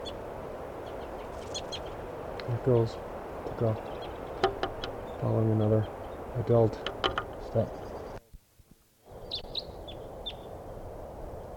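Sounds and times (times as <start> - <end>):
low background noise: 0.0 - 11.5
crossbill flight calls flying over: 0.8 - 8.2
speech: 2.5 - 3.9, 5.2 - 7.8.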